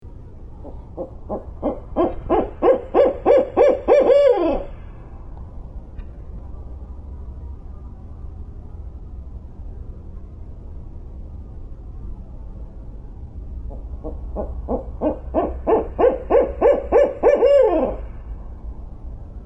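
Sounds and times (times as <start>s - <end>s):
Barred Owl hooting: 0.6s - 5.0s, 13.7s - 18.2s.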